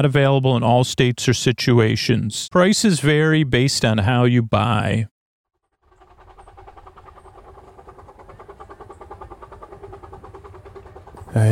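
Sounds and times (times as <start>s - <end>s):
speech: 0.0s - 5.1s
small steam train chugging along rails: 5.8s - 11.4s.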